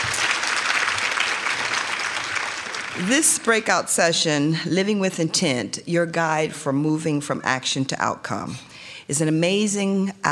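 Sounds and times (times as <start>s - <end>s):
audience applause at a women's event: 0.0s - 3.5s
speech: 3.0s - 10.3s.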